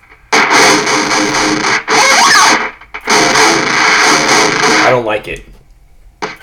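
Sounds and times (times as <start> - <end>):
gritty guitar through an overdrive effect: 0.1 - 4.8
speech: 4.9 - 5.5.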